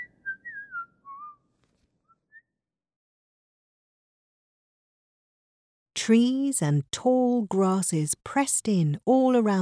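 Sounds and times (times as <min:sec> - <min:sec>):
person whistling a tune: 0:00.0 - 0:01.4
speech: 0:06.0 - 0:09.6.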